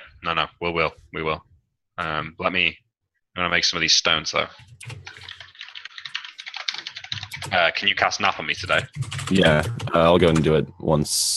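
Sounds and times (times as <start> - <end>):
speech: 0.2 - 2.8, 3.4 - 5.3, 7.4 - 11.3
fast typing on a computer keyboard: 4.6 - 10.6.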